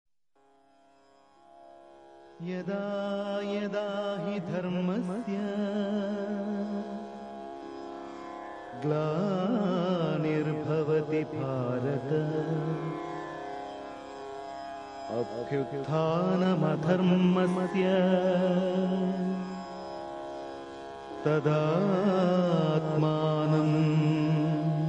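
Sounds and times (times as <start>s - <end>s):
devotional chant: 2.4s - 7.2s, 8.7s - 13.5s, 15.1s - 19.9s, 21.2s - 24.8s.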